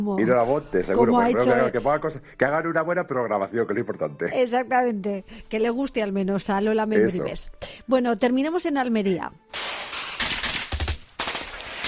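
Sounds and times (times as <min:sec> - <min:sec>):
speech: 0:00.0 - 0:09.8
rapid gunshot sound effect volleys: 0:09.6 - 0:11.8.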